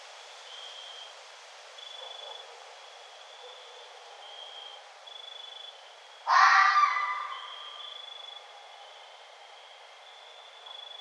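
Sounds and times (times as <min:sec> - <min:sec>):
faint steady tone: 0:00.0 - 0:11.0
red fox raspy scream: 0:06.3 - 0:07.7.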